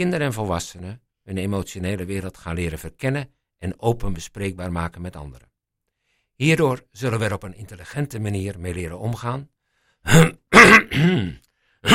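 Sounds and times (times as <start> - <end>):
speech: 0.0 - 5.5, 6.4 - 11.9
person clearing throat: 10.1 - 11.9.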